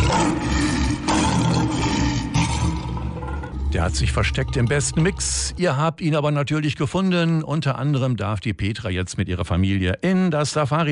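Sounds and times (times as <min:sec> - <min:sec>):
lion roaring with deep rumbling growl: 0:00.0 - 0:05.6
speech: 0:03.8 - 0:10.9.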